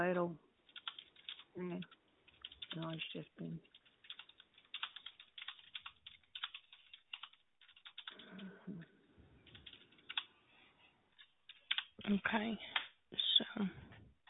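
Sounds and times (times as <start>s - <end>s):
speech: 0.0s - 0.4s, 1.6s - 2.0s, 2.7s - 3.7s, 12.1s - 12.8s, 13.6s - 13.8s
typing on a computer keyboard: 0.7s - 3.0s, 3.6s - 8.5s, 9.4s - 10.3s, 11.2s - 12.0s.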